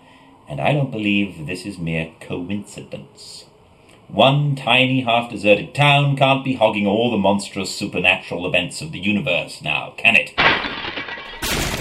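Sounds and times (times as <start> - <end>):
speech: 0.5 - 3.5, 4.1 - 10.8
ottoman thrown from a second-story window crashing: 10.4 - 11.7.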